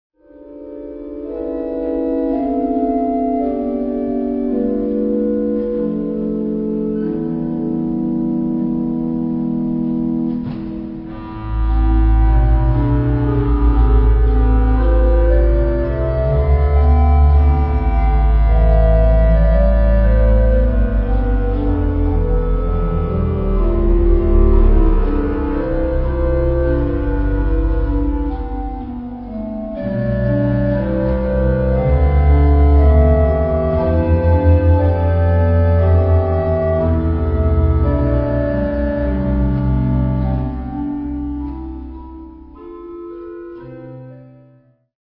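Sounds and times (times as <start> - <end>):
organ playing a canzona: 0.2 - 44.6.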